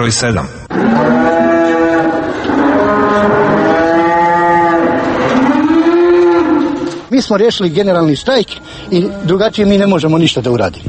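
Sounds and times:
speech: 0.0 - 2.5, 3.1 - 3.6, 7.2 - 10.8
unmilked and unfed dairy cows mooing during a workers' strike: 0.7 - 7.1, 8.0 - 9.9.

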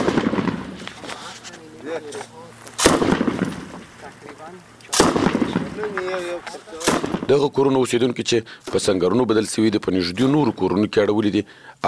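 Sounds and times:
hunting rifle fire aimed at a roadside security post in Marja: 0.0 - 1.1, 2.8 - 4.2, 4.9 - 7.4
speech: 2.0 - 2.4, 4.4 - 11.8.

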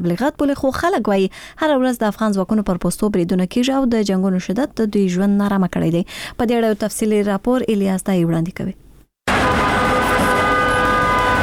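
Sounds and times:
speech: 0.0 - 8.8
horn-like tone of a grey military ambulance: 9.3 - 11.4
road noise: 9.3 - 11.4.

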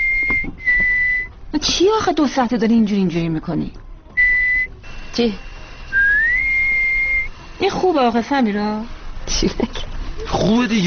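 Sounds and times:
person whistling a tune: 0.0 - 1.3, 4.2 - 4.7, 5.9 - 7.3
speech: 1.6 - 3.8, 5.2 - 5.5, 7.6 - 10.8.

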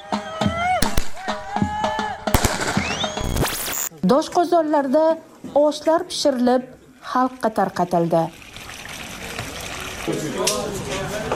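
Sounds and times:
fireworks salutes fired to celebrate a neighbourhood victory: 0.8 - 3.9
speech: 4.1 - 8.4, 10.1 - 11.3.

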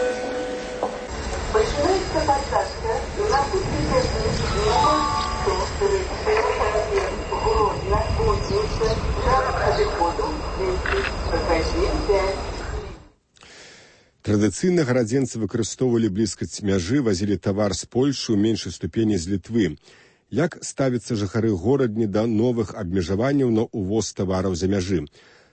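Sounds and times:
low rumble of trains and platform noise: 0.0 - 13.2
public-address voice making a train station boarding announcement: 1.1 - 13.1
speech: 14.4 - 25.4.

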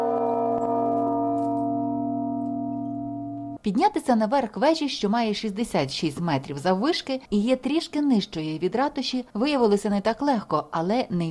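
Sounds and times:
large copper church bell ringing: 0.0 - 3.6
speech: 3.6 - 11.3.

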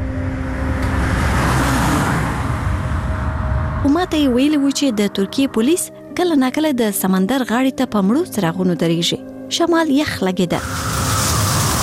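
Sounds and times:
car driving by near a beach at night: 0.0 - 4.4, 10.6 - 11.8
speech: 3.9 - 10.9.

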